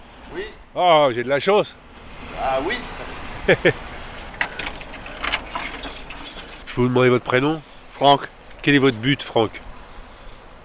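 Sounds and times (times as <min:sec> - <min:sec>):
speech: 0:00.3 - 0:03.9, 0:06.8 - 0:09.6
laughter: 0:03.4 - 0:03.9
keys jangling as a retired man unlocks a church door: 0:04.4 - 0:06.7.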